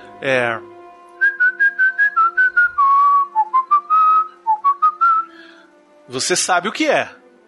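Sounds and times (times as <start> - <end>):
speech: 0.2 - 0.7, 6.1 - 7.2
person whistling a short lively melody: 1.2 - 5.4.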